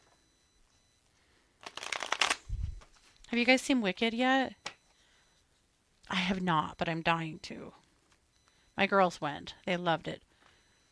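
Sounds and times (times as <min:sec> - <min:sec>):
cards shuffled for a card reading: 0:01.6 - 0:03.1
speech: 0:03.3 - 0:04.6, 0:06.3 - 0:07.8, 0:08.8 - 0:10.3.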